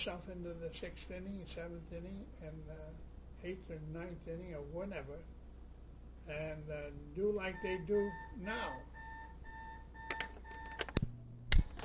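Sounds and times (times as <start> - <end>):
speech: 0.0 - 5.4, 6.3 - 9.0
electronic alarm beeping: 7.4 - 11.0.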